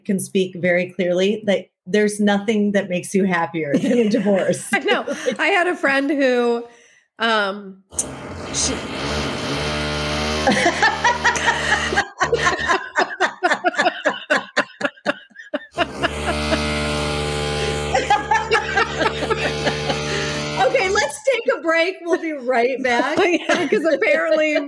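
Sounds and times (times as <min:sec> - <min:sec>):
speech: 0:00.0 - 0:09.2, 0:10.4 - 0:10.9, 0:21.6 - 0:24.6
person laughing in short bursts: 0:03.7 - 0:05.6, 0:10.4 - 0:21.1, 0:23.0 - 0:24.6
neighbor's power drill whining: 0:07.9 - 0:12.6, 0:15.7 - 0:21.2.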